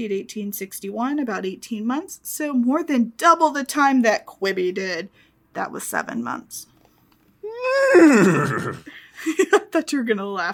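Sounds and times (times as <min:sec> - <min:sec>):
speech: 0:00.0 - 0:06.7, 0:07.5 - 0:10.5
person doing a loud horse whinny impression: 0:07.4 - 0:08.9.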